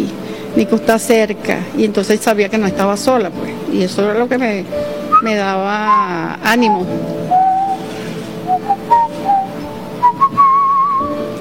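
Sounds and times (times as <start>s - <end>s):
speech: 0.6s - 7.2s
person whistling a short tune: 5.9s - 11.2s.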